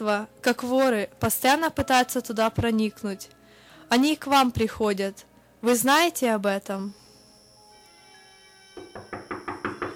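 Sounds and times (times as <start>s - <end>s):
speech: 0.0s - 7.0s
firm knocking on a door: 8.8s - 9.9s.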